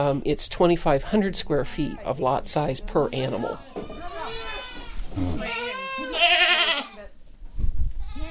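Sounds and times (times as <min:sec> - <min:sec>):
speech: 0:00.0 - 0:04.4
goats bleating: 0:03.3 - 0:07.1, 0:08.0 - 0:08.3.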